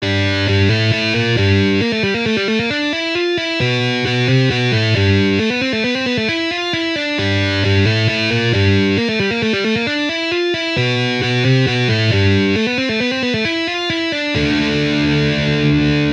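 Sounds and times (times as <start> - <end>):
metal guitar riffs: 0.0 - 16.1.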